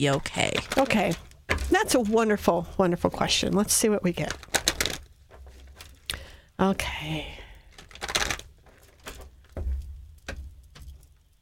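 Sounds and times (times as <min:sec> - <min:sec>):
speech: 0:00.0 - 0:04.5, 0:06.6 - 0:07.4
deck of cards riffling: 0:00.5 - 0:02.1, 0:04.2 - 0:06.2, 0:07.7 - 0:09.5.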